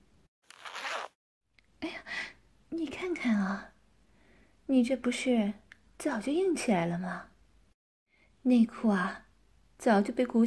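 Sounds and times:
clothing zipper being pulled open: 0.4 - 1.2
speech: 2.7 - 3.7, 4.7 - 7.3, 8.4 - 9.2, 9.8 - 10.4.

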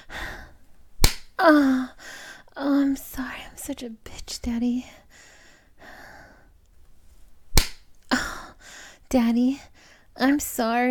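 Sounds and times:
big hand slapping bare buttocks: 1.0 - 1.4, 7.5 - 7.9
rising drawn-out moan: 1.4 - 2.0
speech: 1.4 - 2.0, 2.6 - 5.0, 9.1 - 10.8.

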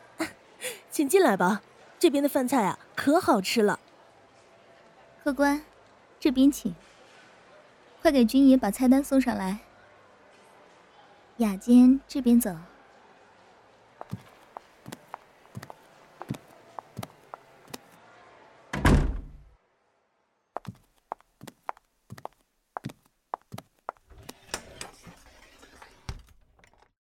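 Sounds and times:
speech: 1.0 - 3.8, 5.2 - 6.9, 8.0 - 9.7, 11.4 - 12.7
door shutting in a restaurant: 18.7 - 19.5.

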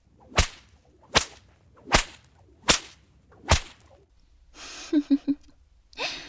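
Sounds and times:
whip cracks: 0.1 - 4.1.

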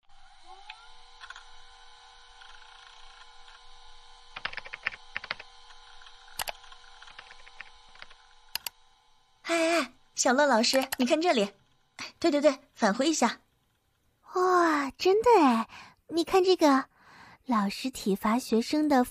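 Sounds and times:
steady low electronic hum: 0.1 - 15.8
laptop keyboard typing: 1.2 - 1.5, 4.3 - 8.8, 10.6 - 11.2
speech: 10.2 - 11.6, 12.2 - 13.4, 15.0 - 16.9, 17.5 - 19.0.

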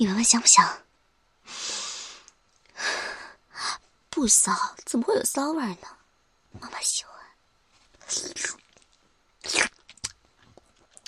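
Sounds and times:
speech: 0.0 - 0.9, 4.2 - 7.2, 8.1 - 8.6, 9.4 - 9.8
crunchy food bitten and chewed: 8.0 - 11.0.

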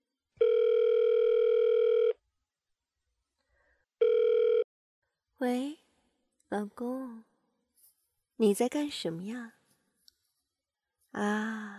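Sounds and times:
electronic phone ringback tone: 0.4 - 2.2, 4.0 - 4.7
speech: 5.4 - 5.8, 6.5 - 7.3, 8.4 - 9.6, 11.2 - 11.7.

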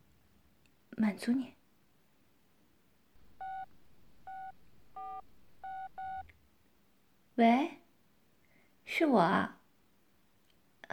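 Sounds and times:
faint hiss: 0.0 - 10.9
speech: 1.0 - 1.6, 9.1 - 9.6
telephone keypad tones: 3.4 - 6.3.

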